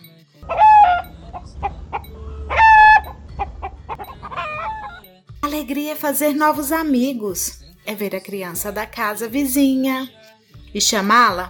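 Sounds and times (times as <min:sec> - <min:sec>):
hen clucking agitatedly with harsh squawks: 0:00.4 - 0:05.0
speech: 0:05.6 - 0:10.2, 0:10.8 - 0:11.4.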